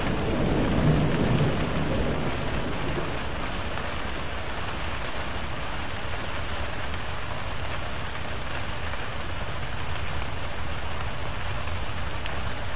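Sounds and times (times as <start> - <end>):
thunder rumble: 0.0 - 4.9
heavy rain pouring: 0.0 - 12.7.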